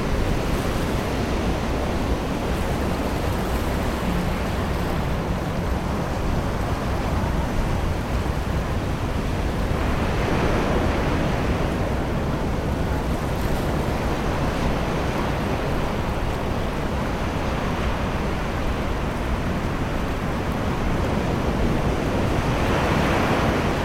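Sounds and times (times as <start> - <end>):
surf washing in on a summer beach on the English coast: 0.0 - 23.8.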